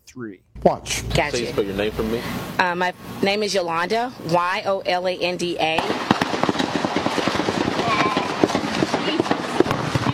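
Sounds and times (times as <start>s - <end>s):
speech: 0.2s - 6.2s
rumbling din: 5.7s - 10.1s
gunshots: 5.8s - 10.1s
voices murmuring and shouting: 7.7s - 9.4s.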